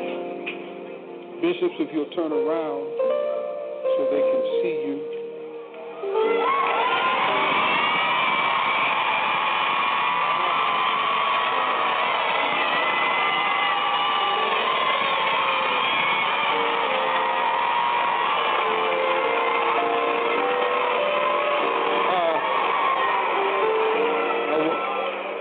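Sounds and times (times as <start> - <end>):
speech: 1.4 - 3.3, 3.9 - 5.2, 6.0 - 7.0
audience shouting and cheering at a ceremony: 5.7 - 25.3.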